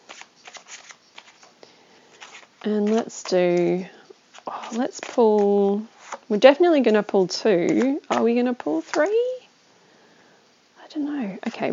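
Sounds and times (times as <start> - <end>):
deck of tarot cards being shuffled: 0.0 - 6.3, 7.6 - 9.1
speech: 2.6 - 4.0, 4.7 - 9.2, 11.0 - 11.7.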